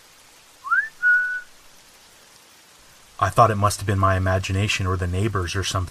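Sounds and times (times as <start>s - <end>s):
faint hiss: 0.0s - 5.9s
person whistling: 0.6s - 1.5s
speech: 3.2s - 5.9s.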